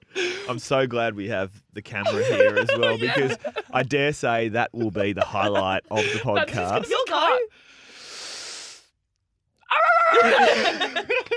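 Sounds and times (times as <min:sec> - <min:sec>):
speech: 0:00.5 - 0:07.6, 0:10.1 - 0:11.3
laughter: 0:01.9 - 0:07.5, 0:10.1 - 0:11.3
person making a long breathy huff imitating a big dog: 0:07.6 - 0:08.9.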